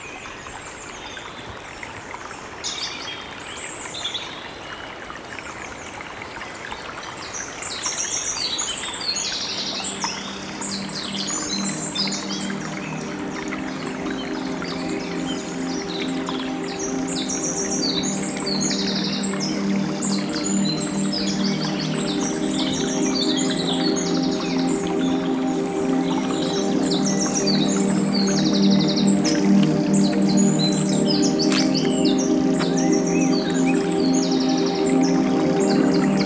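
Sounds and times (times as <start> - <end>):
small stream babbling through a forest: 5.1 - 36.2
many birds chirping and singing in a forest: 9.8 - 36.2.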